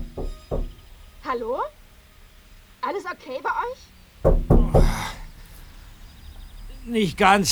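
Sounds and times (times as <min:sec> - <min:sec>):
knocking on a car door: 0:00.0 - 0:01.6, 0:04.2 - 0:05.8
speech: 0:01.3 - 0:01.8, 0:02.8 - 0:05.1, 0:06.9 - 0:07.5.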